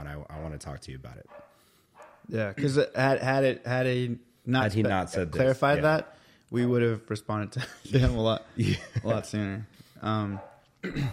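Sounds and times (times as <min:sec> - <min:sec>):
speech: 0:00.6 - 0:01.4, 0:02.2 - 0:11.1
dog barking: 0:01.3 - 0:02.3, 0:10.3 - 0:10.7
laughter: 0:07.6 - 0:09.6.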